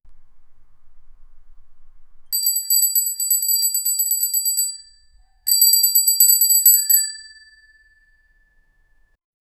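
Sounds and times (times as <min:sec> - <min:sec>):
medium bell chiming: 0:02.4 - 0:08.5.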